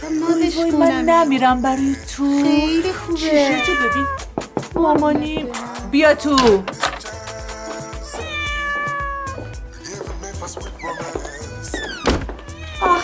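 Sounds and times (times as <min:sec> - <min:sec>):
speech: 0:00.1 - 0:06.8
cat meowing: 0:03.3 - 0:04.3, 0:08.0 - 0:09.5, 0:11.9 - 0:13.0
soft thumps: 0:04.3 - 0:05.6.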